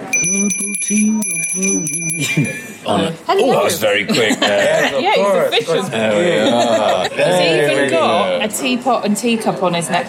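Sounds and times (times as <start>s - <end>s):
bright bell struck in a patterned rhythm: 0.0s - 3.2s
speech: 0.2s - 10.0s
laughter: 2.2s - 2.9s, 3.9s - 8.0s.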